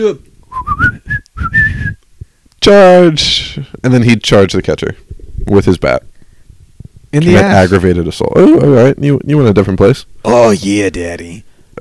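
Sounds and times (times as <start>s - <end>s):
speech: 0.0s - 0.3s, 2.6s - 6.1s, 7.1s - 11.5s
person whistling a signal: 0.5s - 2.0s.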